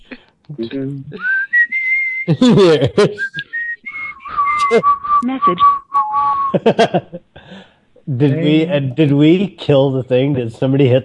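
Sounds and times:
speech: 0.5 - 1.4, 2.3 - 3.5, 4.6 - 11.0
person whistling a tune: 1.2 - 6.7
laughter: 2.3 - 3.5, 4.5 - 4.8, 6.3 - 10.3.

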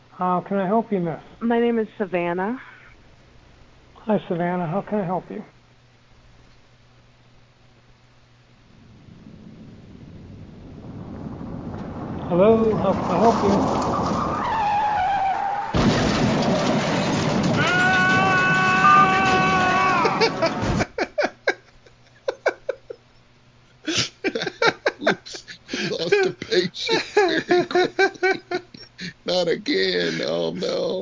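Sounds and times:
speech: 0.2 - 2.7, 4.0 - 5.6, 12.3 - 14.0
long loud tire screech of a skidding car: 8.7 - 20.8
clattering and rattling of a car crash: 11.7 - 14.7, 15.8 - 21.0
laughter: 19.8 - 23.1, 23.9 - 31.0.

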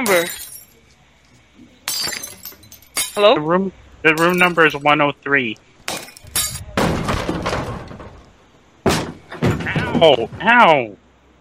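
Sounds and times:
speech: 0.0 - 0.4, 3.2 - 5.6, 10.0 - 11.0
glass deliberately broken in a hotel: 0.0 - 0.9, 1.8 - 3.4, 4.1 - 4.9, 5.8 - 10.5
shattering glass shards tinkling onto the floor: 0.0 - 0.9, 1.8 - 3.4, 4.2 - 4.9, 5.9 - 6.6.

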